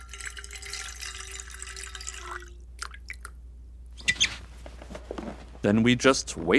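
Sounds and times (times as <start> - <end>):
water pouring into a container: 0.0 - 3.3
speech: 5.6 - 6.5.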